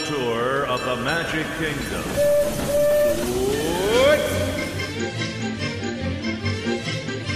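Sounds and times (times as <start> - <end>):
railroad train pulling out with rhythmic chugging: 0.0 - 7.2
speech: 0.9 - 4.4
railroad train whistle-like tone sliding in pitch: 2.2 - 5.1.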